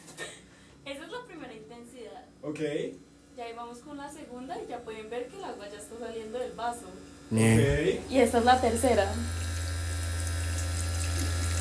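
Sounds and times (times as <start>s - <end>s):
speech: 2.4s - 9.4s
vibrating device humming with a low buzz: 3.6s - 11.5s
person calling out: 7.3s - 8.1s.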